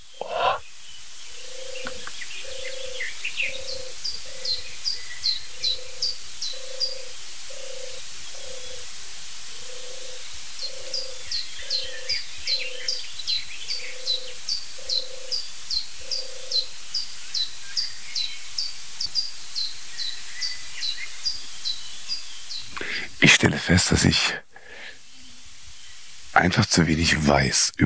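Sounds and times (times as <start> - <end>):
European turtle dove cooing: 0.0 - 0.6, 1.4 - 4.8, 5.5 - 8.9, 9.6 - 13.0, 13.8 - 15.4, 16.0 - 16.7
birds chirping faintly: 0.0 - 27.8
speech: 23.3 - 24.4, 26.4 - 27.8.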